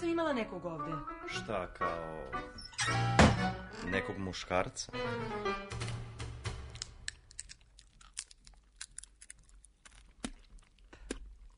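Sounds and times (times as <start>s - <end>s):
speech: 0.1s - 5.8s
seeds being nibbled and cracked between the teeth: 6.8s - 11.4s.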